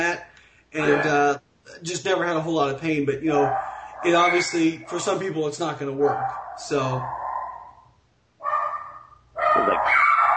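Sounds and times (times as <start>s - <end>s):
speech: 0.1s - 7.2s
dogs barking: 3.3s - 10.3s.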